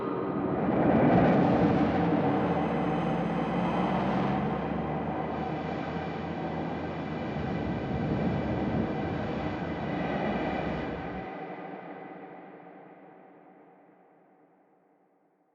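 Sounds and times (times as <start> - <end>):
loopable sci-fi alien atmosphere soundscape: 0.1 - 12.0.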